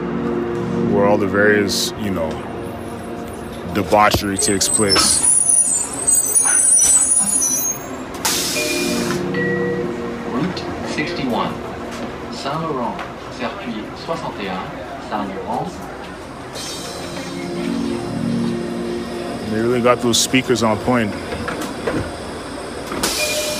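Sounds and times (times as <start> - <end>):
moving city bus engine rumble at midnight: 0.0 - 23.5
indistinct voices murmuring inside a city bus: 1.0 - 8.2, 10.2 - 22.8
speech: 1.1 - 2.5, 3.7 - 5.3, 12.4 - 15.9, 19.5 - 21.3
city bus air brakes hissing: 4.4 - 9.3, 16.4 - 17.8, 21.1 - 23.5.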